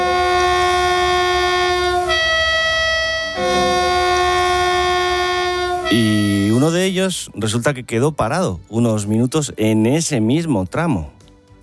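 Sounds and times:
train horn blaring as tribute: 0.0s - 6.8s
speech: 6.9s - 11.6s.

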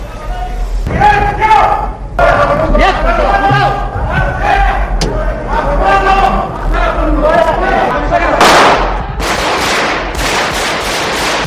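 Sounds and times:
crowd noise: 0.0s - 9.3s
people shouting: 0.9s - 8.4s
speech: 1.0s - 1.5s
pistol and submachine gun gunfire bursts: 8.4s - 11.4s.

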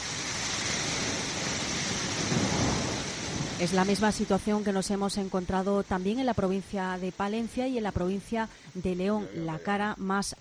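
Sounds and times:
heavy downpour of rain and hail in Briviesca, Burgos, flooding the town: 0.0s - 7.2s
speech: 3.6s - 10.3s.

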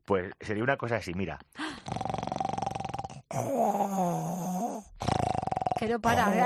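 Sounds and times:
speech: 0.1s - 2.2s, 3.4s - 4.5s, 5.8s - 6.4s
person imitating continuous snoring, rasping on inhale and exhale: 1.6s - 6.4s.

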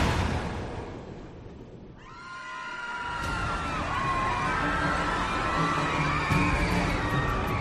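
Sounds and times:
crowd of cruise ship passengers screaming in panic at night after striking a rock: 2.0s - 7.5s.

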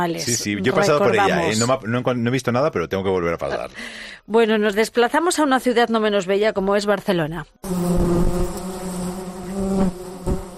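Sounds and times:
speech: 0.0s - 8.6s
flies buzzing: 7.6s - 10.5s.

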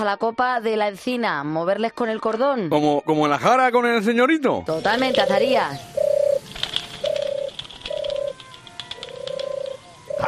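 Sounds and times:
speech: 0.0s - 6.0s
pigeons cooing: 4.8s - 10.2s
rustling: 6.1s - 9.8s
faint clicks: 6.5s - 9.8s.

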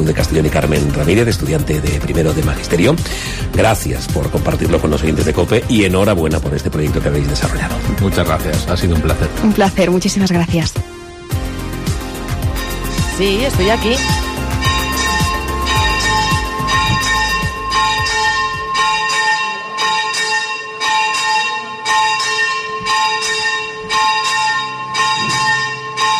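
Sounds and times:
speech: 0.0s - 10.9s, 13.2s - 14.2s
church bells of a basilica ringing in a steady peal: 12.4s - 26.1s.

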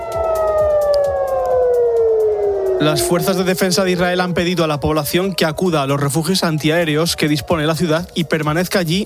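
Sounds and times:
air raid evacuation siren wailing at night: 0.0s - 7.0s
speech: 2.8s - 9.0s.

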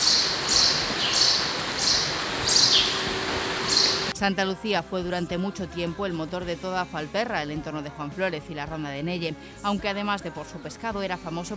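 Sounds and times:
birds chirping on an abandoned market floor: 0.0s - 4.1s
steady hiss: 0.0s - 4.1s
speech: 4.2s - 11.5s.

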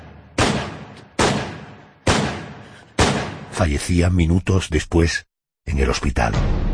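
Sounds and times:
gunshots: 0.0s - 3.6s
speech: 3.6s - 6.6s.

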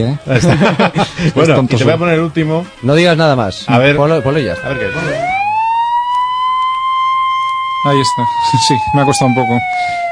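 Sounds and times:
speech: 0.0s - 5.4s, 7.8s - 10.0s
laughter: 0.2s - 1.6s
ambulance siren wailing: 3.7s - 10.0s.

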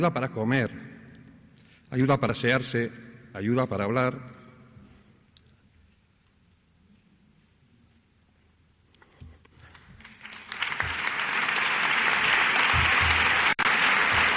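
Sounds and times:
speech: 0.0s - 0.9s, 1.9s - 4.4s
large audience applauding in an ovation: 9.7s - 14.3s.

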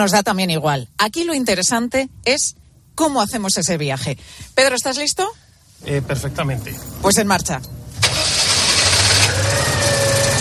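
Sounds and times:
speech: 0.0s - 7.8s
classic car engine starting and rumbling: 5.8s - 10.3s.

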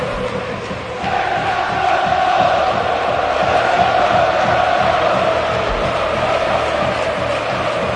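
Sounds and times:
large stadium crowd chanting in unison as a tribute: 0.0s - 7.9s
rhythmic clapping of a stadium crowd: 0.0s - 7.9s.

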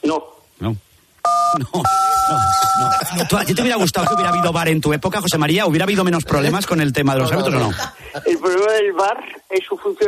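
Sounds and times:
speech: 0.1s - 10.0s
electronic telephone-line dual tone beeping: 1.3s - 3.1s, 4.1s - 4.6s.

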